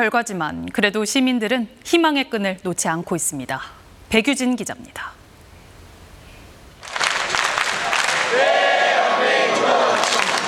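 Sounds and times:
speech: 0.0s - 5.2s
large crowd of fans cheering for its team: 6.8s - 10.4s.

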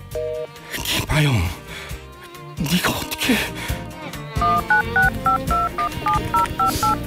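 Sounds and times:
speech: 1.2s - 1.6s, 2.6s - 3.7s
telephone keypad dialing tones: 4.4s - 7.0s.

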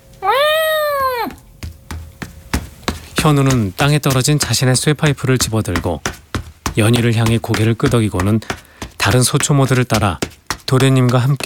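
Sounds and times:
cat meowing loudly: 0.2s - 1.4s
speech: 3.2s - 6.2s, 6.8s - 11.4s.

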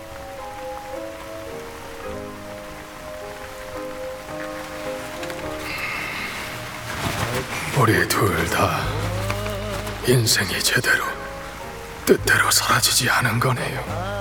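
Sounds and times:
steady rain pattering on a surface: 0.0s - 14.1s
speech: 7.8s - 9.0s, 10.1s - 11.2s, 12.1s - 14.1s.

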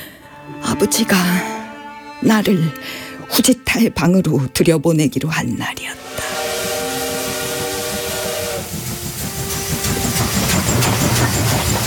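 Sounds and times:
speech: 0.5s - 1.5s, 2.2s - 6.0s
steam locomotive rhythmic chuffing: 6.0s - 11.8s
steam train whistle multi-toned blast: 6.0s - 11.8s.

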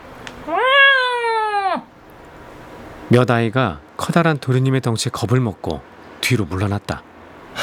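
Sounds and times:
large cat meowing loudly: 0.4s - 1.9s
speech: 3.1s - 7.1s.

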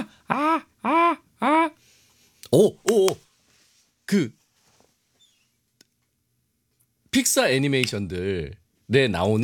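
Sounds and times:
person imitating a seagull's cries: 0.0s - 1.8s
speech: 2.5s - 3.2s, 4.1s - 4.4s, 7.1s - 9.4s.

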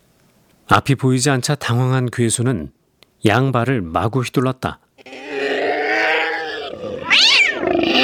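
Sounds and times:
speech: 0.7s - 5.2s
several cats yowling and caterwauling while attacking: 5.0s - 8.0s.

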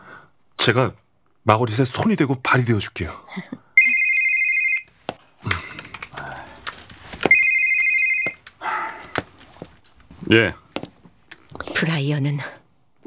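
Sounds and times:
speech: 0.6s - 3.6s, 10.3s - 10.6s, 11.8s - 13.0s
telephone ringing with electronic trill: 3.8s - 6.6s, 7.2s - 9.2s
rustling and handling noises: 4.8s - 11.6s.

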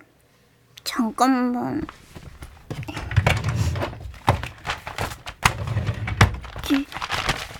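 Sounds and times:
speech: 1.0s - 2.0s
torn notebook pages patched with tape crinkling: 1.8s - 7.5s.

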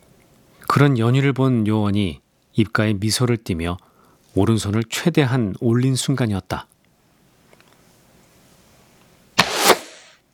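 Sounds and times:
speech: 0.7s - 6.7s
arrow flying through the air: 9.4s - 10.2s
sharp crack of arrow release: 9.4s - 10.2s
sharp snap: 9.4s - 10.2s.

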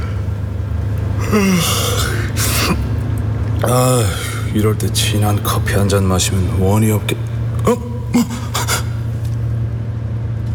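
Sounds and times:
low steady hum of a moving bus: 0.0s - 10.5s
man yawning on a moving bus: 1.2s - 2.9s, 3.6s - 4.5s, 7.6s - 9.1s
speech: 1.3s - 1.9s, 3.6s - 8.3s.

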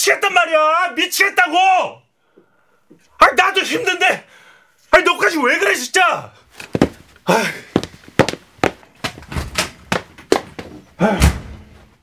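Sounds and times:
speech: 0.0s - 2.0s, 3.2s - 7.7s, 11.0s - 11.4s
door being hit hard and slammed shut: 9.0s - 11.9s.

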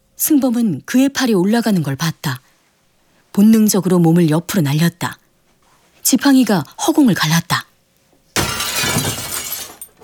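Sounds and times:
speech: 0.2s - 2.5s, 3.4s - 5.2s, 6.0s - 7.7s
breaking and falling shards of a glass door: 8.4s - 10.0s
glass door shattering: 8.4s - 10.0s.

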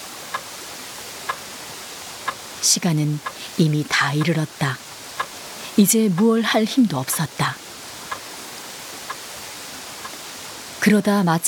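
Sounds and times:
soft hiss: 0.0s - 11.4s
speech: 2.6s - 4.9s, 5.8s - 7.6s, 10.8s - 11.4s
clock second hand ticking: 3.2s - 7.4s.

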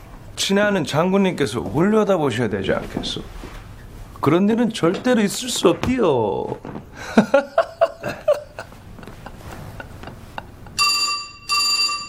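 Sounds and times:
speech: 0.5s - 3.5s, 4.2s - 8.2s
soft chuckling laughter: 7.0s - 10.8s
telephone ringing in loud buzzy electronic bursts: 10.7s - 12.0s.

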